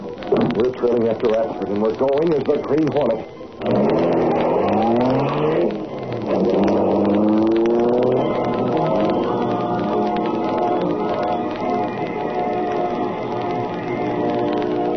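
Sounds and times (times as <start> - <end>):
speech: 0.4 - 3.8
black high-speed car engine roaring and revving: 3.6 - 14.9.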